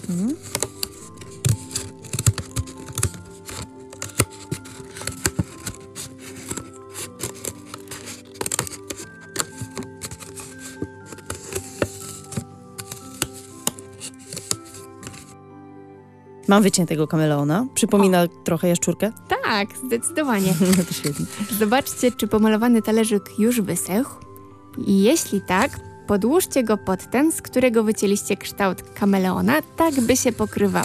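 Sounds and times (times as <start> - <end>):
scissors cutting out a paper shape: 0.0 - 15.3, 20.4 - 22.1, 29.6 - 30.8
quiet music: 0.0 - 30.8
speech: 0.1 - 0.7, 16.5 - 24.2, 24.8 - 30.8.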